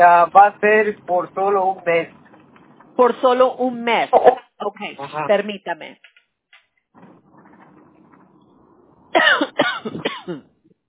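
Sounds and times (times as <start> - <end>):
speech: 0.0 - 2.2, 3.0 - 6.1, 9.2 - 10.5
person coughing harshly: 9.2 - 10.6.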